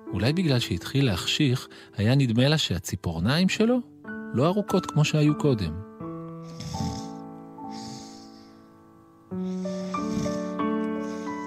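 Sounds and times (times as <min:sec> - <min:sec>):
speech: 0:00.1 - 0:06.6
voice imitating a tiger's soft snoring: 0:06.4 - 0:08.3, 0:09.4 - 0:11.4.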